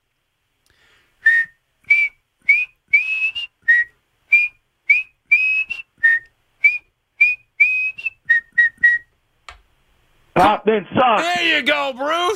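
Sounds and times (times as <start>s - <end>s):
person whistling a football fans' whistle tune: 1.2s - 9.1s
speech: 10.6s - 12.3s.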